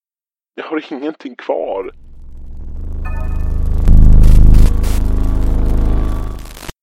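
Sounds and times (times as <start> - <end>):
speech: 0.6 - 2.1
droning electronic hum: 1.9 - 6.7
crackling static hiss on a phone line: 1.9 - 6.8.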